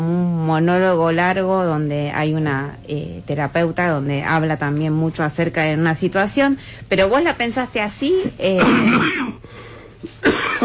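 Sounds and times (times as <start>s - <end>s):
speech: 0.5s - 10.6s
person coughing and clearing their throat: 8.6s - 9.4s, 10.0s - 10.6s.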